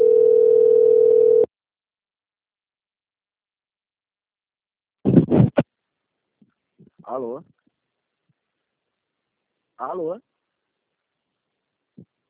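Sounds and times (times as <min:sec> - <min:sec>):
telephone dial tone: 0:00.0 - 0:01.5
speech: 0:07.2 - 0:07.6, 0:09.8 - 0:10.3.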